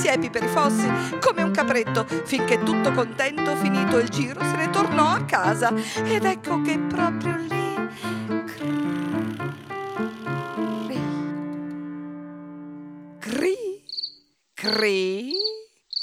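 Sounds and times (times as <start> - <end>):
speech: 0.0 - 8.1, 14.6 - 15.5
played musical notes: 0.0 - 13.3
cricket chirping: 13.9 - 16.0.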